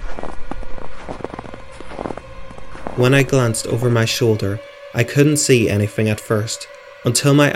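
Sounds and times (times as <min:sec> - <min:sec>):
footsteps crunching through snow: 0:00.0 - 0:04.6
speech: 0:03.0 - 0:07.5.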